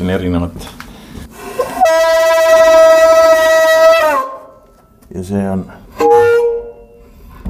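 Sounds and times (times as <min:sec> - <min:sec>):
speech: 0:00.0 - 0:00.8, 0:05.1 - 0:05.8
ship's foghorn blast: 0:01.8 - 0:04.6, 0:06.0 - 0:07.2.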